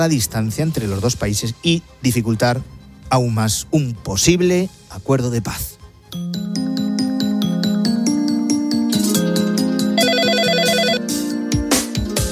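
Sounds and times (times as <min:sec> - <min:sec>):
speech: 0:00.0 - 0:06.2
telephone ringtone electronic melody over a pulsing beat: 0:06.1 - 0:11.4, 0:12.1 - 0:12.3.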